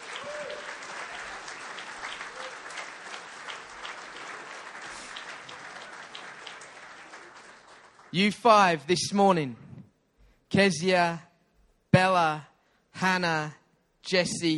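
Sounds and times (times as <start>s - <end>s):
audience applauding: 0.0s - 8.4s
speech: 8.1s - 9.6s, 10.6s - 11.3s, 11.9s - 14.5s.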